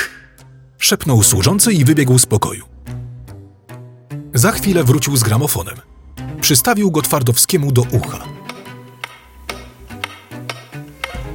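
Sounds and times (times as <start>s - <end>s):
speech: 0.9s - 2.8s, 4.4s - 8.4s
clock ticking: 6.4s - 11.2s.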